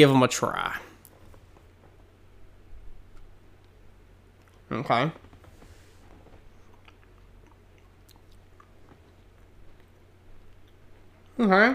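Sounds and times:
speech: 0.0s - 0.9s, 4.7s - 5.2s, 11.4s - 11.7s
faint low hum: 0.0s - 11.7s
chewing crunchy cookies: 6.4s - 11.4s.

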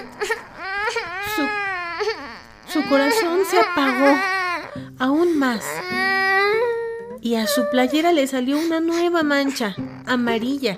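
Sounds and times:
child crying in wavering wails: 0.0s - 4.8s, 5.6s - 8.1s
speech: 2.9s - 4.4s, 5.0s - 6.2s, 7.2s - 10.7s.

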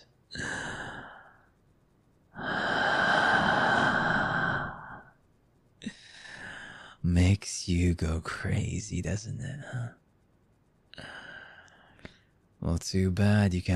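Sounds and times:
slow heavy breathing into the microphone: 0.3s - 1.5s, 2.4s - 5.2s, 5.8s - 7.0s, 11.0s - 12.3s
speech: 7.3s - 10.0s, 12.7s - 13.7s.

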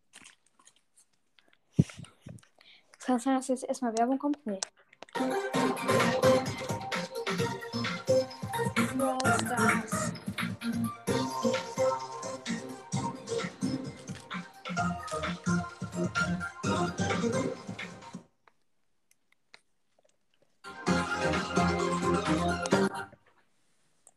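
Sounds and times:
speech: 3.1s - 5.4s
upbeat video game lobby music from a TV: 5.2s - 18.2s, 20.7s - 23.1s.

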